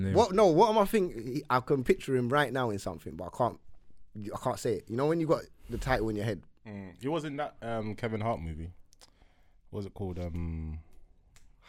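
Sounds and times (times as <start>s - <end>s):
speech: 0.0s - 8.8s, 9.7s - 10.8s
finger snaps while trying to remember something: 10.9s - 11.6s.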